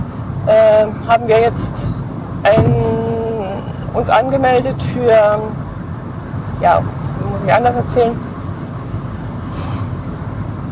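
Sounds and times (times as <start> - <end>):
police car engine and tire rumble driving past: 0.0 - 10.7
speech: 0.5 - 3.0, 3.9 - 5.6, 6.6 - 8.3
brief hiss: 9.5 - 9.9.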